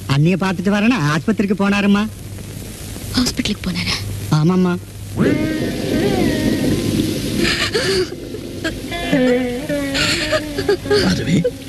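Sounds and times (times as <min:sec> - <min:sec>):
heavy rain: 0:00.0 - 0:11.6
speech: 0:00.2 - 0:02.2, 0:03.2 - 0:06.5, 0:07.8 - 0:11.6
voices in strained wavering tones: 0:05.2 - 0:11.6.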